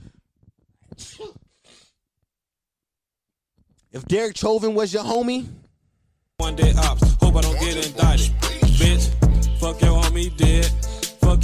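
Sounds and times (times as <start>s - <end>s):
sneeze: 1.0s - 2.0s
speech: 3.9s - 5.6s, 6.4s - 11.4s.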